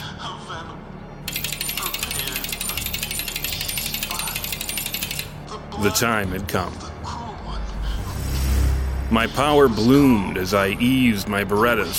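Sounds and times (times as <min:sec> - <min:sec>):
low hum: 0:00.0 - 0:11.9
rapid mechanical clicking: 0:01.3 - 0:05.4
speech: 0:05.8 - 0:06.9, 0:09.1 - 0:11.9.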